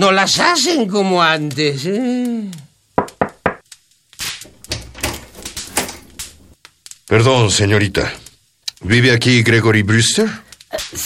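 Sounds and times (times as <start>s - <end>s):
speech: 0.0s - 2.6s, 7.1s - 8.2s, 8.8s - 11.0s
heavy wooden chair thumping: 4.4s - 6.6s.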